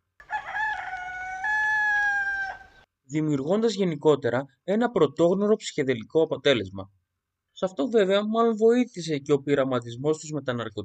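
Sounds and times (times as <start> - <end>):
rooster crowing: 0.2 - 2.9
speech: 3.1 - 7.0, 7.6 - 10.8.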